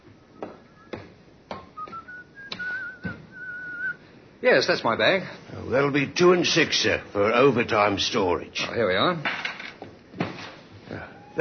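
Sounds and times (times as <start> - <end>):
man whistling a wandering tune at a baggage check counter: 0.2 - 1.1, 1.7 - 4.0
speech: 4.4 - 9.4.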